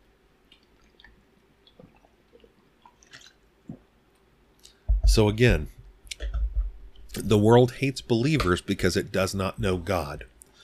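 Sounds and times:
person drinking water with sips and swallows: 0.5s - 3.9s
speech: 5.2s - 5.8s, 7.2s - 10.3s.

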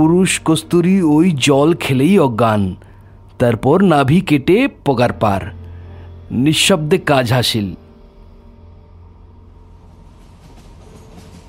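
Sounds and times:
speech: 0.0s - 5.6s, 6.3s - 7.8s
passenger train running on rails: 9.2s - 11.4s.

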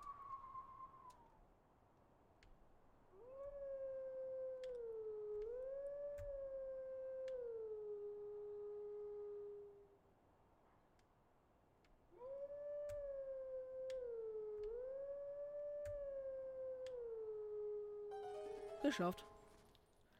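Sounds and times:
video game wolf howling a short melodic lullaby tune at a gravestone: 3.2s - 9.8s, 12.2s - 19.1s
speech: 18.9s - 19.3s.

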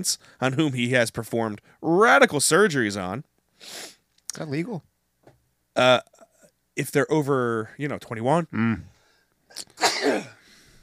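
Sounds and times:
speech: 0.0s - 4.9s, 5.8s - 6.1s, 6.8s - 8.9s, 9.5s - 10.4s
sharp inhale before sneeze: 3.6s - 4.0s
person sneezing after blowing vape smoke out of the nose: 9.5s - 10.4s.

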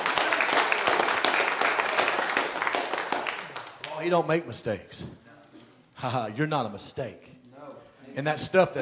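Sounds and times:
crowd applauding in praise to God: 0.0s - 4.2s
speech: 4.0s - 5.2s, 6.0s - 7.3s, 8.2s - 8.8s.

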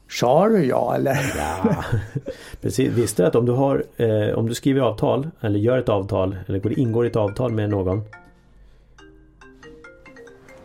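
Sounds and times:
speech: 0.2s - 8.2s
laughter: 1.1s - 3.2s
mobile phone melodic ringtone: 7.7s - 10.6s.

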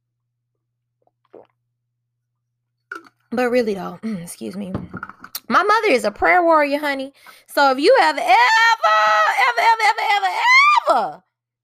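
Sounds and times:
person taking a quick sip of water: 1.0s - 1.6s
brief slurpy gulp of water: 1.2s - 1.6s
speech: 3.3s - 11.3s.

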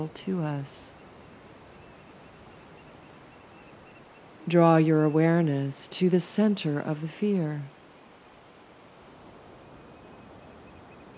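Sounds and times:
speech: 0.0s - 1.0s, 4.5s - 7.8s
ocean waves on a shore: 0.0s - 11.1s
faint high bird chirps: 1.7s - 4.4s, 9.6s - 11.1s.

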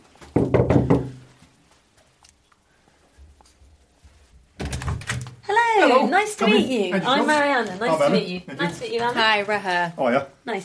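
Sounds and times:
firm loud knocks on a front door: 0.3s - 1.3s
speech: 5.9s - 10.6s.

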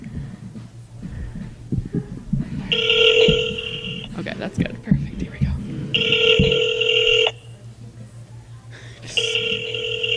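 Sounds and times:
low murmur: 0.0s - 10.1s
electronic telephone ringing tone as a number is called: 2.7s - 4.1s, 6.0s - 7.4s, 9.2s - 10.1s
speech: 2.8s - 3.0s, 4.4s - 5.0s.

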